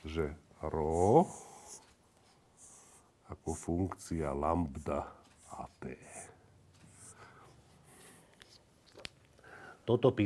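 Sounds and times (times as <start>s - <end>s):
speech: 0.2s - 1.9s, 3.5s - 6.2s, 9.9s - 10.2s
faint scratchy strokes of symbols written by hand: 0.8s - 8.7s.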